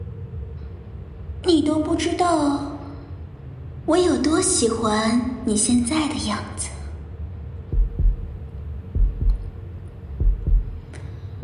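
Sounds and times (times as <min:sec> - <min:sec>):
low rumbling hum: 0:00.0 - 0:11.4
speech: 0:01.4 - 0:02.7, 0:03.9 - 0:06.8
heartbeat thumping in lub-dub pairs: 0:07.7 - 0:11.4.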